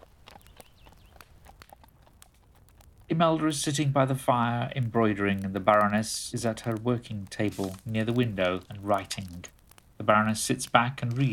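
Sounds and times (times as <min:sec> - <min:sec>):
several horses ridden away at a walk, hooves clip-clopping: 0:00.0 - 0:11.3
speech: 0:03.2 - 0:11.3.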